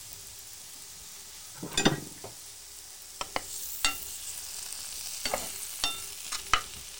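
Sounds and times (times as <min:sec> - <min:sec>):
mushrooms sizzling in butter: 0:00.0 - 0:06.9
spatula stirring mushrooms frying in butter: 0:03.2 - 0:06.9.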